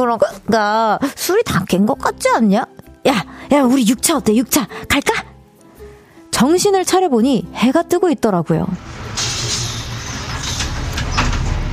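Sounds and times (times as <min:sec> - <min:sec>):
speech: 0:00.0 - 0:05.3, 0:06.4 - 0:09.0
airy hisses: 0:08.8 - 0:10.8
city bus engine drone: 0:08.8 - 0:11.7
traffic noise: 0:08.8 - 0:11.7.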